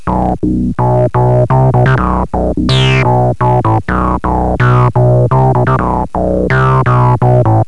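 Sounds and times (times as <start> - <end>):
techno bass riff sweep: 0.0 - 7.6.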